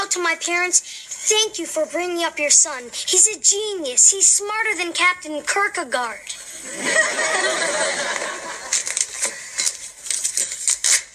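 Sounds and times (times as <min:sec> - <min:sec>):
speech: 0:00.2 - 0:08.4
laughter: 0:06.6 - 0:09.3
sealed paper envelope torn open: 0:08.6 - 0:11.1.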